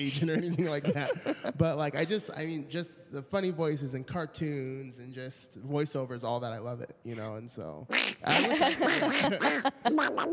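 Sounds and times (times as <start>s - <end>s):
laughter: 0.0s - 2.6s, 8.2s - 10.3s
speech: 0.0s - 10.3s
person imitating a cartoon duck with raspy squawking babble: 7.9s - 10.3s.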